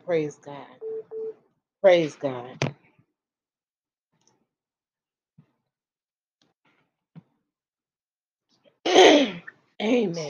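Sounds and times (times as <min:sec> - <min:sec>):
speech: 0:00.1 - 0:00.8, 0:01.8 - 0:02.8, 0:09.8 - 0:10.2
harsh throat clearing: 0:08.9 - 0:09.5.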